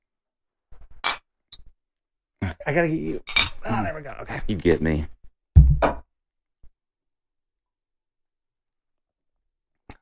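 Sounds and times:
speech: 2.6 - 5.2
beer glasses clinking together in a toast: 3.2 - 3.7.

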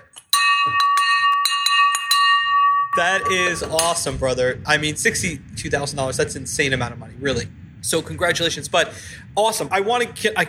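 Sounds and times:
victory handheld bell rung rapidly: 0.1 - 4.1
speech: 3.0 - 10.4.

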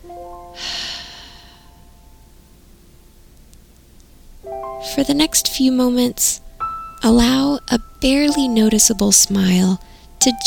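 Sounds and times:
deep breath in and out during a morning meditation: 0.6 - 1.8
speech: 4.8 - 10.4.

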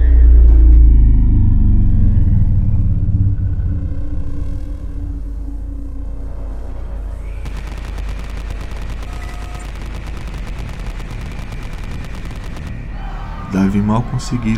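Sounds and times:
low rumbling background: 0.0 - 14.5
rapid volley of gunfire: 7.4 - 14.5
speech: 13.7 - 14.5.

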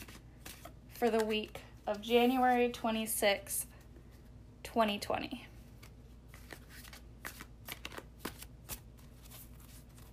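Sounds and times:
tarot cards being shuffled: 0.0 - 2.7, 5.6 - 10.1
speech: 1.0 - 3.7, 4.7 - 5.5.

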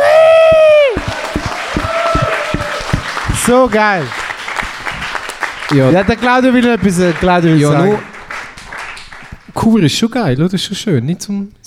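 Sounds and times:
loud shout dropping in pitch: 0.0 - 2.9
crowd cheering and whooping: 0.0 - 3.6
crowd applauding: 0.0 - 9.5
speech: 3.5 - 4.2, 5.7 - 8.1, 9.6 - 11.6.

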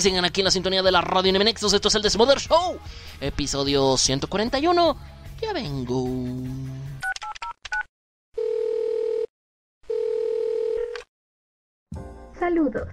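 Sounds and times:
speech: 0.0 - 6.8, 12.4 - 12.9
telephone ringing tones of a call to a radio station's phone line: 8.4 - 11.0.

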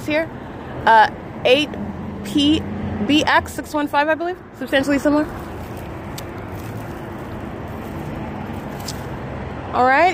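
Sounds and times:
heavy road traffic roar: 0.0 - 10.1
vehicles passing: 0.0 - 10.1
speech: 0.1 - 5.5, 9.8 - 10.1.

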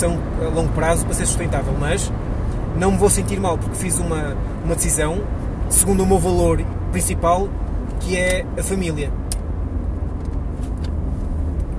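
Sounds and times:
speech: 0.0 - 9.2
car travelling along a motorway with road and engine noise: 0.0 - 11.7.

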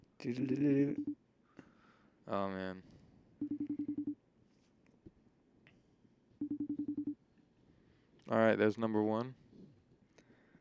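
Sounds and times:
speech: 0.2 - 1.2, 2.3 - 2.9, 8.3 - 9.4
outgoing phone call ringing tone: 3.4 - 4.2, 6.4 - 7.2.

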